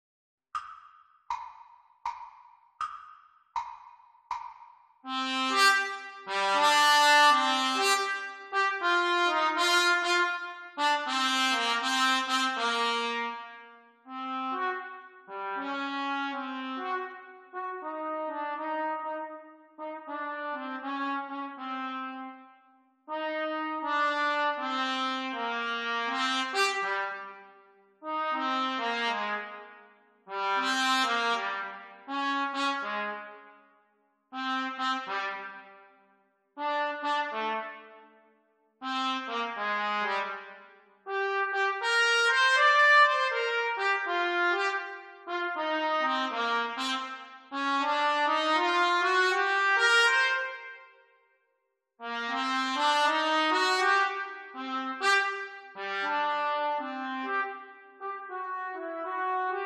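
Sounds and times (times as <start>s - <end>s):
trumpet duet: 5.1s - 22.5s, 23.1s - 33.5s, 34.3s - 35.9s, 36.6s - 38.0s, 38.8s - 50.9s, 52.0s - 59.6s.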